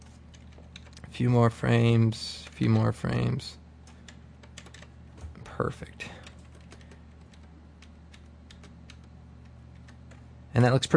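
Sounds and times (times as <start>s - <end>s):
steady low hum: 0.0s - 10.9s
speech: 1.2s - 3.6s, 5.6s - 6.2s, 10.6s - 10.9s
computer keyboard page down key presses: 3.9s - 4.9s, 6.2s - 10.3s.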